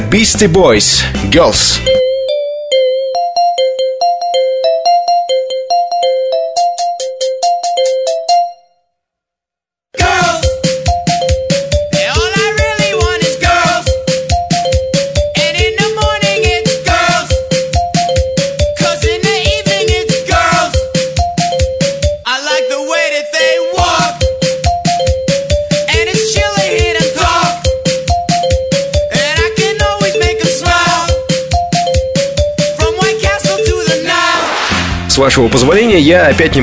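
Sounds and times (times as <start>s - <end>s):
speech: 0.1s - 2.0s, 35.3s - 36.6s
mobile phone ringtone melody: 1.4s - 9.0s, 10.0s - 34.7s
steady thumping beat: 10.0s - 22.3s, 23.6s - 36.6s.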